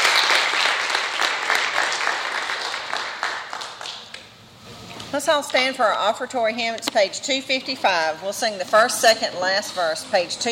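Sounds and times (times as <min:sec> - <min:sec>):
crowd of people applauding: 0:00.0 - 0:04.2
speech: 0:05.1 - 0:10.5.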